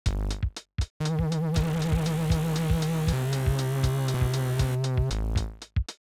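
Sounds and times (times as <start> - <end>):
square wave tones: 1.0 - 5.2.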